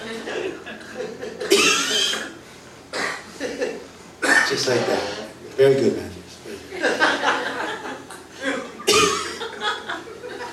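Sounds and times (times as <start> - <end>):
laughter: 0.0 - 2.2, 3.3 - 3.9, 6.5 - 10.5
person giving deliberate forced coughs: 1.5 - 3.3, 4.2 - 4.6, 8.5 - 9.4
speech: 4.5 - 6.1.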